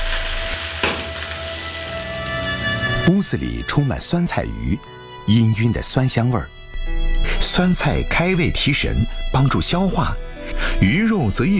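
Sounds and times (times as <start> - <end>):
hot oil sizzling over dried and fresh Sichuan peppercorns and chilies: 0.0 - 3.0
speech: 3.1 - 11.5.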